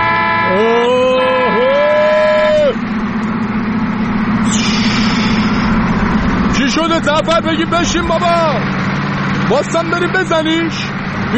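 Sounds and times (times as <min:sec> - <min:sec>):
car horn blaring: 0:00.0 - 0:03.0
car engine rumbling: 0:00.0 - 0:11.3
speech: 0:06.9 - 0:08.8, 0:09.5 - 0:11.3.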